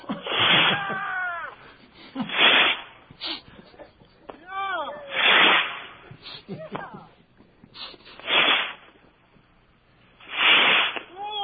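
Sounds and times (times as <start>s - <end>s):
bottle rockets being launched for New Year: 0.2s - 0.8s, 2.3s - 2.9s, 5.1s - 6.0s, 8.2s - 8.9s, 10.2s - 11.1s.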